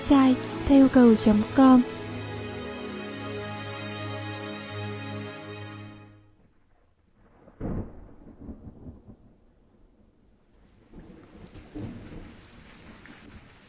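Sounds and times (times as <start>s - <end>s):
steady rainfall: 0.0s - 4.6s, 10.3s - 13.6s
sustained tonal drone: 0.0s - 6.3s
speech: 0.1s - 2.0s
low rolling thunder rumble: 7.2s - 12.7s
sharp thunderclap: 7.2s - 13.6s.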